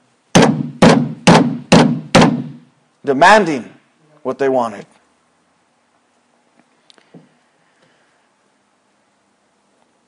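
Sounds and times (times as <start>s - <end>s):
heavy blows pounding on a wooden door: 0.3s - 2.6s
speech: 3.0s - 5.0s.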